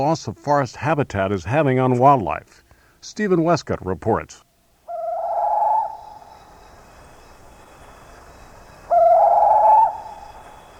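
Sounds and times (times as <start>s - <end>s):
speech: 0.0s - 4.4s
forest bird from Indonesia giving hooting whistle calls: 4.9s - 7.9s, 8.5s - 10.7s.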